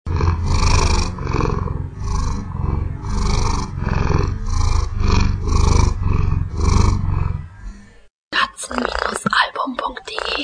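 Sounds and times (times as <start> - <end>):
tomcat purring: 0.1 - 7.6, 8.7 - 9.3.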